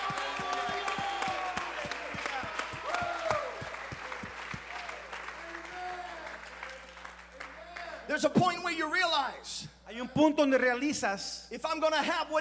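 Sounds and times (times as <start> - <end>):
church congregation clapping rhythmic applause: 0.0 - 8.2
speech: 8.2 - 12.3.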